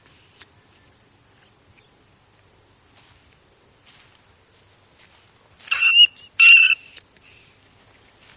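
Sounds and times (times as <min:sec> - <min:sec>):
brown rat squeaking: 0:05.7 - 0:07.0.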